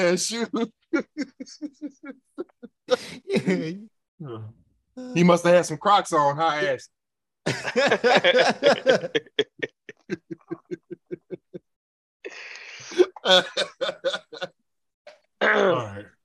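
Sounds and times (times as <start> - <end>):
speech: 0.0 - 9.5, 13.0 - 14.5, 15.4 - 16.1
laughter: 0.4 - 3.8, 7.5 - 11.8, 12.9 - 14.6
person clearing throat in guttural pulses: 15.4 - 16.1
voiced grunt: 15.4 - 16.2.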